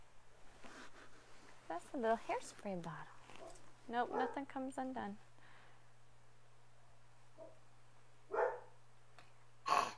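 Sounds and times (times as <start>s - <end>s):
low steady hum: 0.0s - 9.9s
speech: 1.7s - 3.2s, 3.9s - 5.3s
dog barking: 3.4s - 4.4s, 8.3s - 8.8s.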